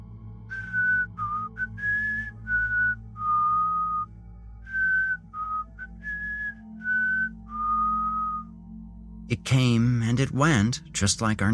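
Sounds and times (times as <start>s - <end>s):
eerie lone whistled tune: 0.2s - 8.8s
speech: 9.3s - 11.5s.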